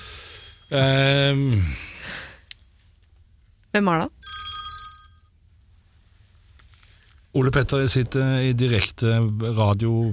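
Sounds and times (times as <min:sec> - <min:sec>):
telephone ringing with a bright metallic bell tone: 0:00.0 - 0:01.0, 0:04.2 - 0:05.3
speech: 0:00.7 - 0:01.9, 0:03.8 - 0:04.2, 0:07.4 - 0:10.1.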